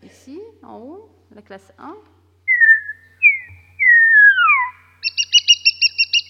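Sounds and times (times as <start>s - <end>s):
speech: 0.6s - 2.2s
European starling giving clear sliding whistles: 2.5s - 6.2s
European starling rapid repeated chirping notes: 2.5s - 6.2s.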